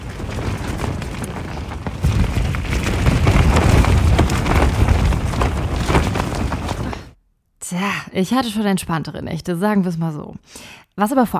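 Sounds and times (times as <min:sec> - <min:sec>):
gusting wind with a deep rumbling roar: 0:00.0 - 0:07.2
heavy rain pouring at night: 0:00.0 - 0:07.2
speech: 0:07.7 - 0:11.3.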